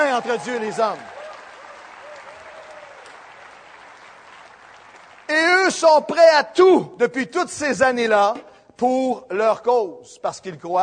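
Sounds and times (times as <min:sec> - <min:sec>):
audience applause of many hands clapping: 0:00.0 - 0:05.5
speech: 0:00.2 - 0:01.1, 0:05.3 - 0:10.8.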